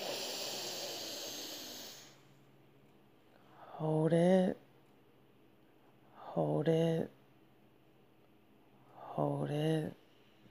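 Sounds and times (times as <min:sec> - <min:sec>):
deep breath in during a guided breathing exercise: 0:00.0 - 0:02.2
speech: 0:03.8 - 0:04.6, 0:06.4 - 0:07.2, 0:09.2 - 0:10.0.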